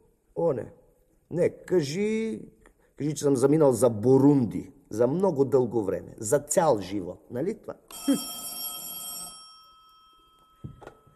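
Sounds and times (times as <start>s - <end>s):
speech: 0.4s - 8.5s
old telephone bell ringing: 7.9s - 11.1s.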